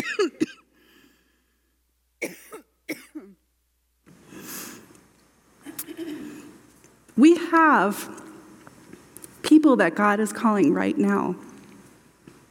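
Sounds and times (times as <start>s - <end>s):
person coughing in short sharp bursts: 0.0s - 0.7s, 2.2s - 3.4s, 5.7s - 6.5s
speech: 7.2s - 8.2s, 9.6s - 11.5s.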